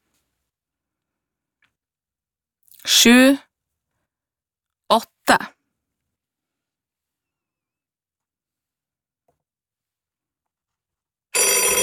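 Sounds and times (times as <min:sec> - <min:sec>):
speech: 0:02.9 - 0:03.4, 0:04.9 - 0:05.6
telephone bell ringing in studio: 0:11.4 - 0:11.8.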